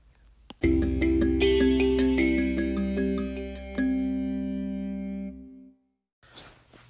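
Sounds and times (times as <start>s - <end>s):
bright electronic instrumental accompaniment chords during a test broadcast: 0.6s - 6.0s.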